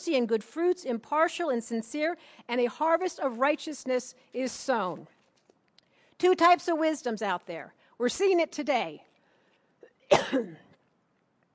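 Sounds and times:
speech: 0:00.0 - 0:05.2, 0:06.2 - 0:09.1, 0:10.1 - 0:10.6
person coughing: 0:10.0 - 0:10.8.

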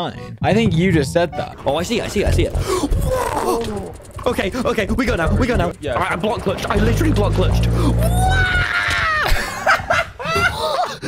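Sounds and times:
speech: 0:00.0 - 0:08.6
voice imitating a cartoonish video-game falling scream: 0:07.8 - 0:09.3
short whooping cries: 0:08.0 - 0:09.4
laughter: 0:09.1 - 0:11.0.

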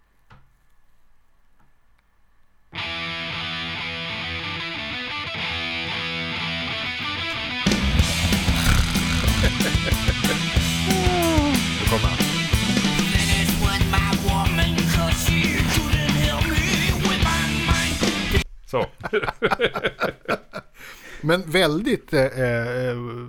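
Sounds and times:
distorted guitar riff: 0:02.8 - 0:18.4
heavy metal band playing a rock song: 0:02.8 - 0:18.4
pounding drums: 0:07.7 - 0:17.2
laughter: 0:08.2 - 0:12.3, 0:18.8 - 0:20.7
speech: 0:21.3 - 0:23.2.

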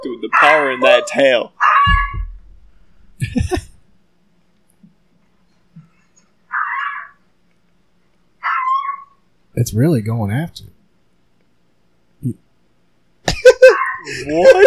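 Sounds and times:
speech: 0:00.0 - 0:02.0, 0:03.2 - 0:03.7, 0:09.6 - 0:10.7, 0:12.2 - 0:12.4, 0:14.1 - 0:14.6
dog barking and yelping: 0:00.3 - 0:02.3, 0:13.6 - 0:14.2
laughter: 0:03.2 - 0:03.8, 0:13.3 - 0:14.6.

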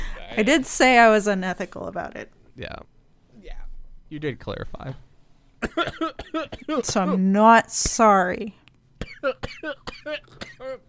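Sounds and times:
speech: 0:00.4 - 0:08.6, 0:09.2 - 0:10.8
person coughing from a tickle in the throat: 0:05.6 - 0:07.2, 0:09.0 - 0:10.8.

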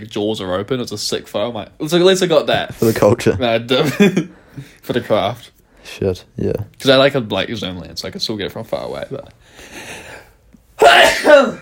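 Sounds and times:
speech: 0:00.0 - 0:10.0, 0:10.8 - 0:11.5
loud sneeze: 0:10.8 - 0:11.5.

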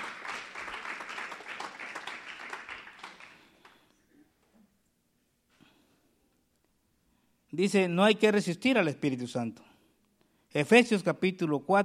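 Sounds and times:
audience clapping: 0:00.0 - 0:03.9
speech: 0:07.5 - 0:09.7, 0:10.5 - 0:11.8.

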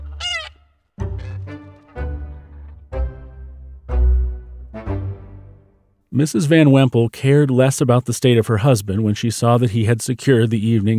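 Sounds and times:
goose honking: 0:00.0 - 0:02.8
speech: 0:06.2 - 0:10.9.

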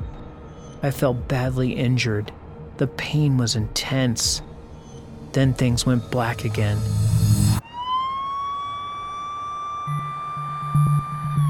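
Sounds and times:
speech: 0:00.8 - 0:04.5, 0:05.3 - 0:07.2
ambulance siren wailing: 0:07.5 - 0:11.4.

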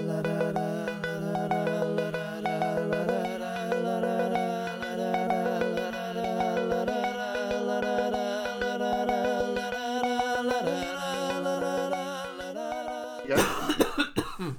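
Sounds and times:
tuneful musical passage with steady ticking: 0:00.0 - 0:14.4
loud hacking cough: 0:13.3 - 0:14.5.

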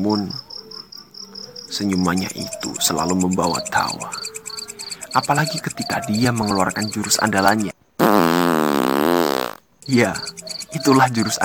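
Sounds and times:
speech: 0:00.0 - 0:00.4, 0:01.7 - 0:04.2, 0:05.2 - 0:07.7, 0:09.9 - 0:11.4
long loud buzzy fart: 0:08.0 - 0:09.6.

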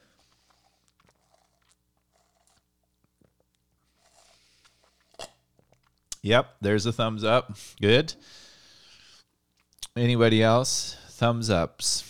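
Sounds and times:
sipping and swallowing a thick smoothie through a straw: 0:00.0 - 0:05.9
speech: 0:06.2 - 0:08.5, 0:10.0 - 0:12.0.

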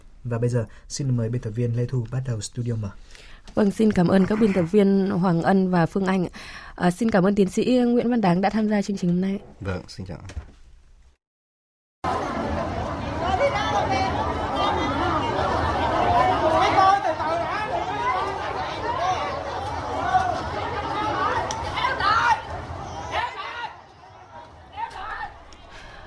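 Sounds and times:
speech: 0:00.2 - 0:10.6
crowd chatter at funeral: 0:12.0 - 0:26.0.

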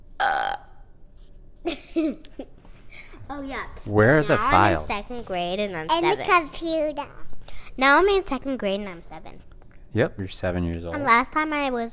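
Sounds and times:
single loud deliberate burp: 0:00.2 - 0:00.8
speech: 0:03.4 - 0:07.2, 0:07.8 - 0:11.9.

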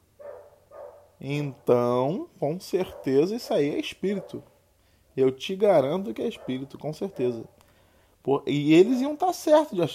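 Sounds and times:
dog barking outside window: 0:00.2 - 0:01.2, 0:02.8 - 0:03.3, 0:04.1 - 0:04.5, 0:06.2 - 0:07.6
speech: 0:01.2 - 0:04.5, 0:05.2 - 0:07.6, 0:08.2 - 0:09.9.

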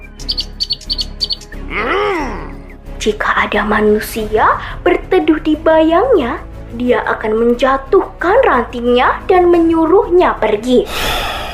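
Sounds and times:
longer lower bird call swooping up and down: 0:00.0 - 0:01.6
birds chirping: 0:00.0 - 0:02.9
speech: 0:03.0 - 0:11.2.

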